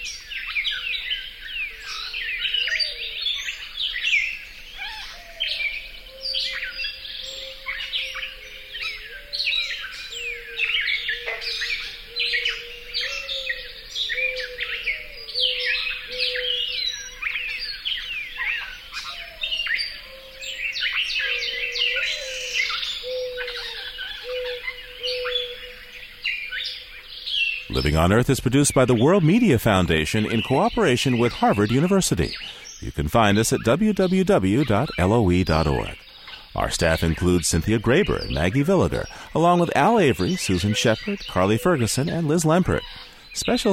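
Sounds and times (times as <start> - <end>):
gray catbird squeaky chirps and warbles: 0.0 - 43.7
mourning dove cooing: 2.0 - 3.3, 5.0 - 17.5, 19.0 - 26.0, 32.2 - 32.8
speech: 27.8 - 36.0, 36.6 - 43.7.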